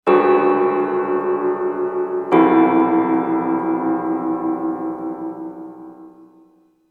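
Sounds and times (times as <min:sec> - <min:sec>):
creepy piano: 0:00.0 - 0:06.8.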